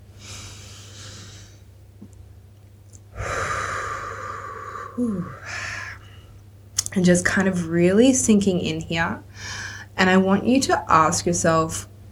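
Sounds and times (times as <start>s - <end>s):
deep breathing in through the nose and out through the mouth: 0.1s - 1.7s, 3.1s - 6.4s
speech: 5.0s - 5.6s, 7.0s - 11.9s.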